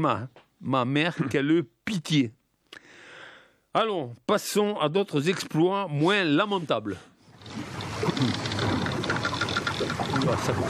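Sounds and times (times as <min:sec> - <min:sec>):
speech: 0:00.0 - 0:02.4, 0:03.7 - 0:08.4, 0:09.8 - 0:10.6
constant wash of water: 0:07.3 - 0:10.6
wooden ship hulls creaking and groaning: 0:07.3 - 0:10.6
rumbling noise: 0:07.4 - 0:10.6.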